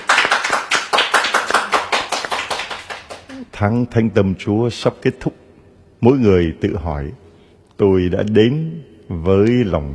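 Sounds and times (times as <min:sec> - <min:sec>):
church audience applauding at a Sunday service: 0:00.0 - 0:03.4
speech: 0:03.6 - 0:05.4, 0:06.0 - 0:07.2, 0:07.8 - 0:09.9.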